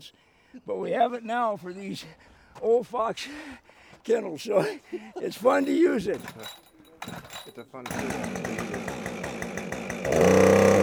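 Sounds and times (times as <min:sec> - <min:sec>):
speech: 0:00.0 - 0:09.1
chainsaw cutting notches into the side of a log at a log cabin build in 7-degree cold: 0:07.9 - 0:10.8.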